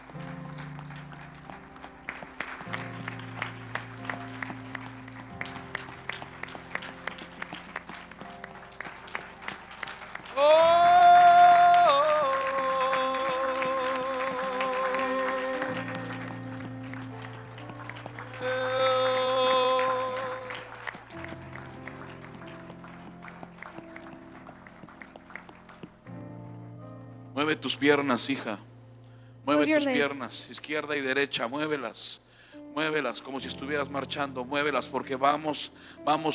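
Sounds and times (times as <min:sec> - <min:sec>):
audience at a religious meeting clapping: 0:00.0 - 0:26.4
music with voices and instruments: 0:00.0 - 0:36.3
speech: 0:27.5 - 0:28.7, 0:29.6 - 0:32.2, 0:32.8 - 0:36.3.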